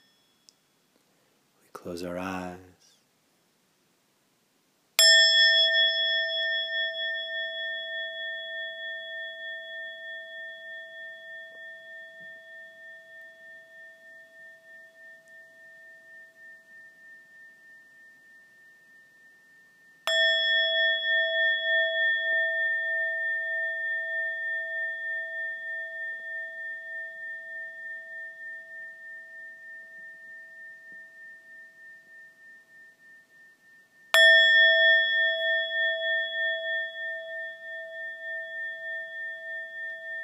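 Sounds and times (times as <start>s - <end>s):
meditation bell being struck and ringing: 0.0s - 0.8s, 5.0s - 40.2s
speech: 1.8s - 2.7s.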